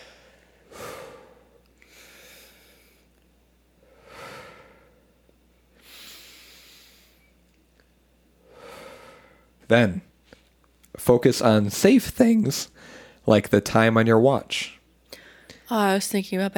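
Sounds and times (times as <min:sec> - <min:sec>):
deep breaths drawn in and let out slowly: 0:00.0 - 0:03.2, 0:03.8 - 0:07.4, 0:08.4 - 0:09.6, 0:12.7 - 0:13.2, 0:15.1 - 0:15.7
speech: 0:09.7 - 0:10.1, 0:11.0 - 0:14.8, 0:15.7 - 0:16.5.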